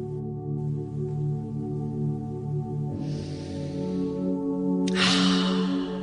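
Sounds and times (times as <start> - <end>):
steady sustained tonal drone: 0.0 - 6.0
slow deep breathing exercise: 2.9 - 6.0.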